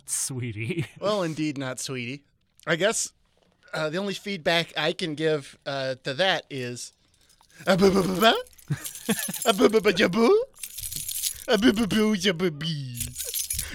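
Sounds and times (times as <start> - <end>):
speech: 0.1 - 7.0, 7.6 - 10.4, 11.5 - 13.7
keys jangling and jingling: 7.1 - 12.1, 13.0 - 13.7.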